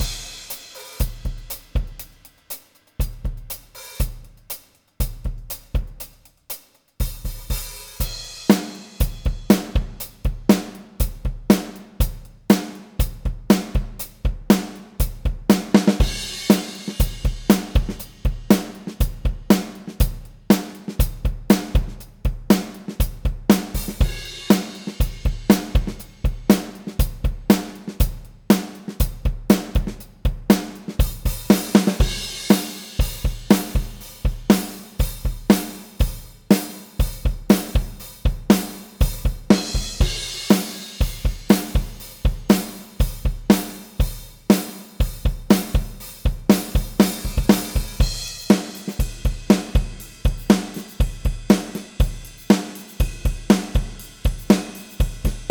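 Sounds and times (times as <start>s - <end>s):
drums in stereo: 0.0s - 55.4s.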